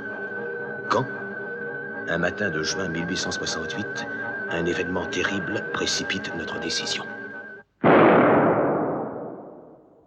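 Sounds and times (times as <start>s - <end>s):
speech: 0.9s - 1.2s, 2.1s - 7.2s
cannon shot fired from a frigate: 7.8s - 10.0s.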